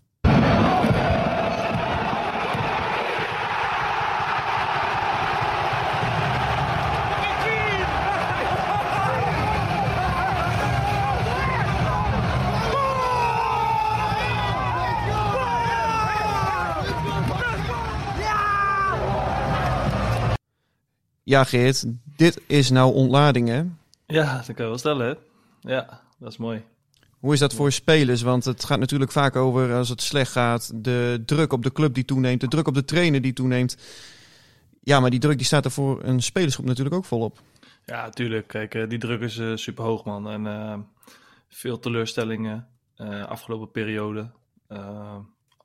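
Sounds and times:
large crowd of football fans cheering: 0:00.2 - 0:20.4
speech: 0:21.3 - 0:34.2, 0:34.8 - 0:45.6.

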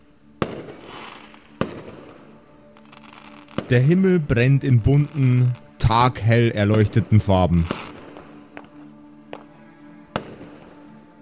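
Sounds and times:
fireworks exploding at a celebration: 0:00.4 - 0:04.0, 0:04.9 - 0:10.8
speech: 0:03.7 - 0:07.8
thin whistling streak of fireworks: 0:08.3 - 0:10.2.

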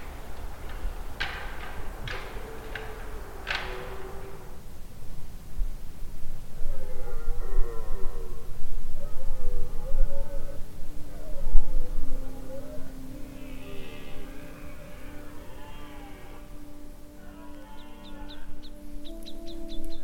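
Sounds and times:
blackbirds singing at a forest edge: 0:00.0 - 0:05.3, 0:10.5 - 0:20.0
thrushes singing at a forest edge: 0:00.0 - 0:06.8, 0:07.4 - 0:20.0.

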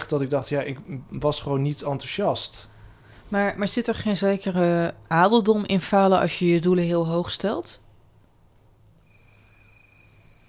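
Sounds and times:
speech: 0:00.1 - 0:02.7, 0:03.3 - 0:07.8
crickets chirping: 0:09.0 - 0:10.4.

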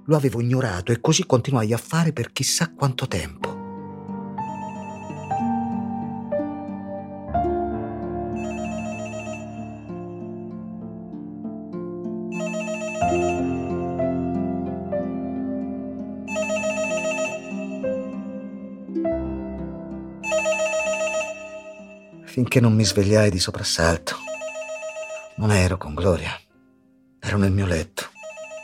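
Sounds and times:
sustained musical backdrop: 0:00.0 - 0:24.3
speech: 0:00.1 - 0:03.5, 0:22.5 - 0:24.2, 0:25.4 - 0:26.4, 0:27.3 - 0:28.0
home landline telephone ringing: 0:04.4 - 0:05.9, 0:08.4 - 0:10.2, 0:12.3 - 0:14.3, 0:16.3 - 0:18.2, 0:20.2 - 0:22.2, 0:24.1 - 0:25.5, 0:28.1 - 0:28.6.

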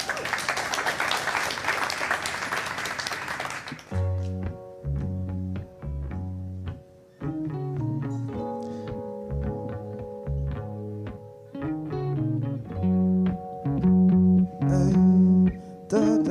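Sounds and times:
crowd applauding: 0:00.0 - 0:04.3
music with sustained rhythmic chords: 0:03.9 - 0:16.2.

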